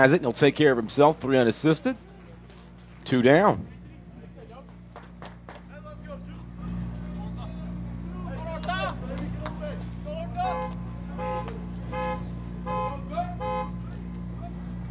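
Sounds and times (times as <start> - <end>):
speech: 0.0 - 2.1, 3.0 - 3.8
steady low hum: 0.0 - 14.9
car alarm warbling and honking: 10.5 - 13.8.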